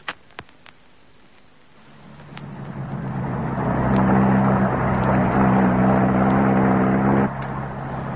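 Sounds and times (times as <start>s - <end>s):
car engine starting and revving as the vehicle moves off: 1.9s - 8.1s.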